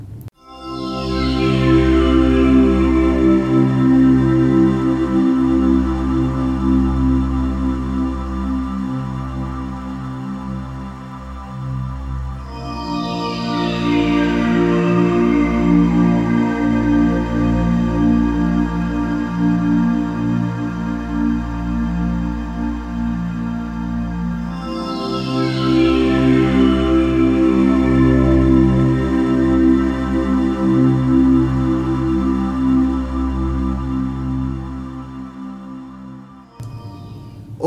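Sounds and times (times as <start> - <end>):
instrumental music from a CD with low drones and shimmering high notes: 0.4 - 37.6.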